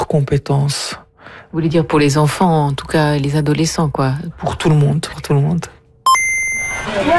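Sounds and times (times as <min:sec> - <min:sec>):
speech: 0:00.1 - 0:05.8
high-pitched electronic beep from a mobile phone game: 0:06.0 - 0:07.0.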